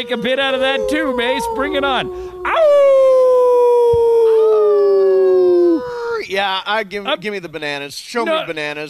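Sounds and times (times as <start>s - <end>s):
speech: 0.0s - 3.0s, 6.3s - 8.8s
person howling imitating a dog: 0.0s - 6.2s.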